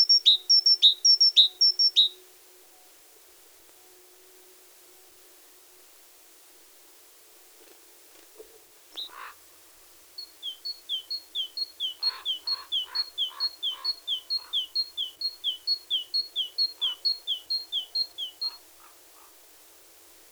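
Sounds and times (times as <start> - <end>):
great tit singing: 0.0 - 2.2, 9.0 - 9.3, 10.2 - 19.4.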